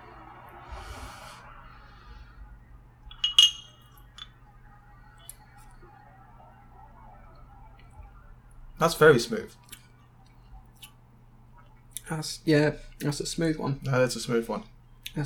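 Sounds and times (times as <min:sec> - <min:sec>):
low steady hum: 0:00.0 - 0:15.2
light glass taps: 0:03.1 - 0:03.8
two whiskey glasses clinking in a toast: 0:03.1 - 0:04.4
speech: 0:08.8 - 0:09.6, 0:12.1 - 0:15.2.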